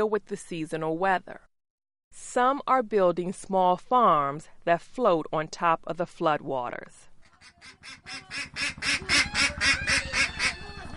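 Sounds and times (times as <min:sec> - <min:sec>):
speech: 0:00.0 - 0:01.5, 0:02.1 - 0:10.0
ducks in a coop on a bamboo floating farm quacking raspily: 0:07.3 - 0:10.9.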